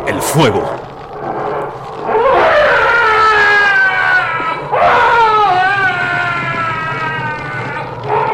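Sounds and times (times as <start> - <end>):
speech: 0.2 - 0.8
tentacled creature shrieking while burned by a torch: 2.3 - 8.3.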